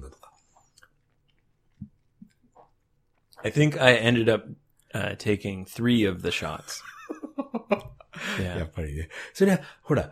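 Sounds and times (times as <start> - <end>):
faint chewing and biting of food: 0.2 - 3.5
speech: 3.4 - 6.9, 7.6 - 10.0.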